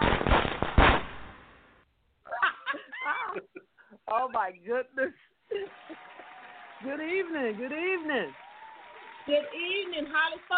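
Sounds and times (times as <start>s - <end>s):
firecracker sound effect with sharp bangs and crackling: 0.0s - 1.8s
laughter: 2.3s - 3.9s, 5.5s - 6.5s
speech: 4.1s - 5.8s, 6.8s - 8.4s, 9.3s - 10.5s.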